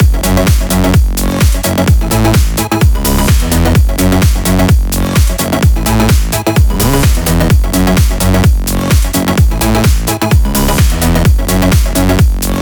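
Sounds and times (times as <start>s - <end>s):
electro house music mix: 0.0s - 12.5s.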